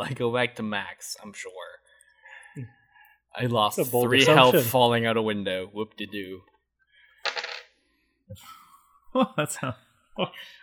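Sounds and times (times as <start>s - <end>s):
speech: 0.0s - 1.7s, 2.6s - 6.5s, 8.3s - 10.6s
d12 die rolling on a hard tabletop: 7.3s - 7.7s.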